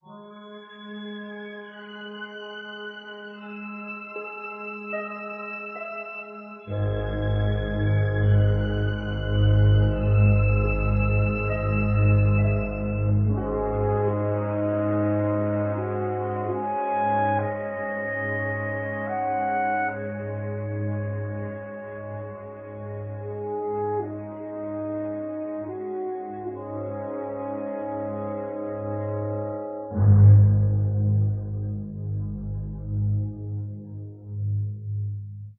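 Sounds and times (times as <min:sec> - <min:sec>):
sad string music loops: 0:00.1 - 0:34.8.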